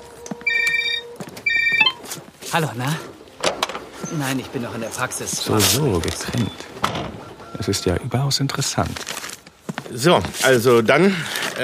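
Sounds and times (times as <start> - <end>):
telephone ringing with trilling electronic tones: 0.0 - 2.1, 6.2 - 8.0
speech: 2.5 - 3.1, 4.1 - 9.2, 9.9 - 11.6.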